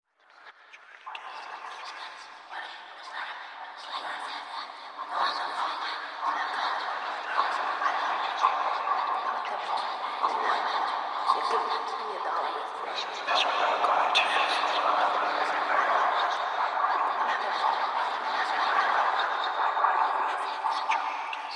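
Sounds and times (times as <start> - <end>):
scary voices: 5.0 - 21.5.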